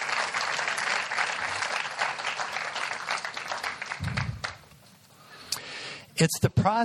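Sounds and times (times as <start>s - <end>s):
audience applause: 0.0s - 4.7s
speech: 6.2s - 6.8s.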